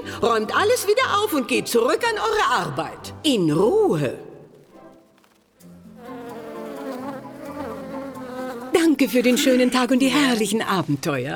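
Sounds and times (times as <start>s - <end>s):
speech: 0.2s - 4.3s, 8.9s - 11.3s
many bees swarming inside a hive: 4.5s - 10.2s.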